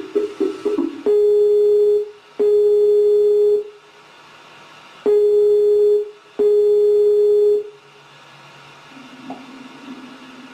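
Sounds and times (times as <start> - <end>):
quiet telephone line hiss: 0.1 - 3.9, 5.0 - 7.9
telephone busy tone beeps after a call is hung up: 1.1 - 3.7, 5.1 - 7.7.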